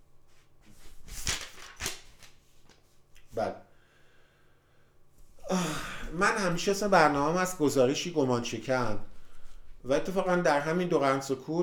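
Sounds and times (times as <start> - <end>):
paper pages of a book flipping: 0.3 - 3.3
speech: 3.4 - 3.6, 5.5 - 9.1, 9.8 - 11.6.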